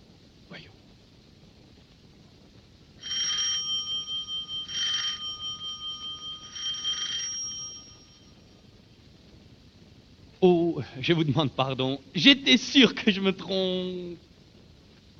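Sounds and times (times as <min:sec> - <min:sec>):
doorbell ringing in short buzzing bursts: 0:03.0 - 0:08.3
speech: 0:10.4 - 0:14.3.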